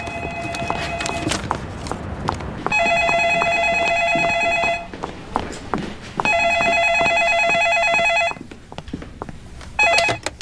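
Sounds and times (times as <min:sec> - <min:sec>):
electronic telephone ringing in a café: 0:00.0 - 0:01.4, 0:02.7 - 0:04.9, 0:06.2 - 0:08.4, 0:09.7 - 0:10.4
busy café clattering noise: 0:00.0 - 0:10.4.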